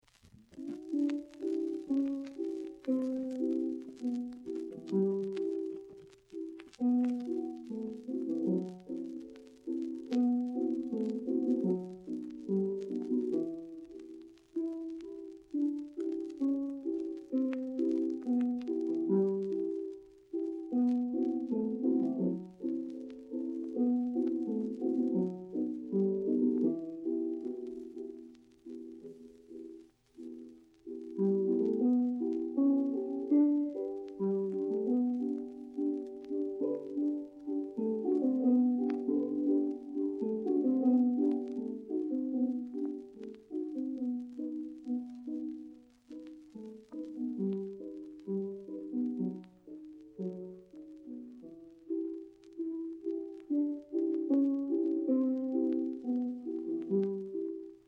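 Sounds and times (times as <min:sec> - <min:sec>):
piano melody: 0:00.5 - 0:57.8.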